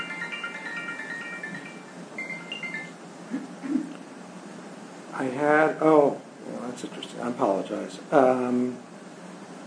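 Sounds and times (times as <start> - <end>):
mobile phone ringtone for an incoming call: 0.0 - 3.1
speech: 5.2 - 6.2, 6.8 - 8.9.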